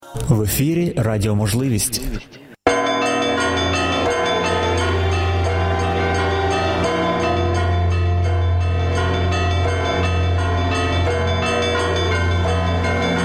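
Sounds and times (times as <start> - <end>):
speech: 0.2 - 2.4
church bells pealing: 2.7 - 13.2.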